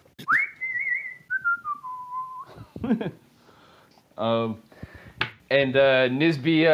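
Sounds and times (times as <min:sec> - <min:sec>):
person whistling a tune: 0:00.2 - 0:02.6
speech: 0:02.8 - 0:03.2, 0:04.2 - 0:04.7, 0:05.5 - 0:06.7.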